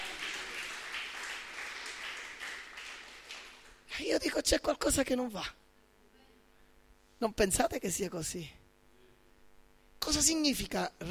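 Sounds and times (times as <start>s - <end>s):
congregation applauding: 0.0s - 3.9s
speech: 4.0s - 5.6s, 7.2s - 8.6s, 10.0s - 11.0s.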